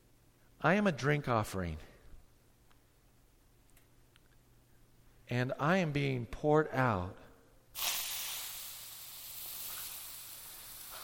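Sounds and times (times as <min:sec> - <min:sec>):
speech: 0:00.6 - 0:01.9, 0:05.3 - 0:07.2
steam hissing off an overheated pan: 0:07.8 - 0:11.0.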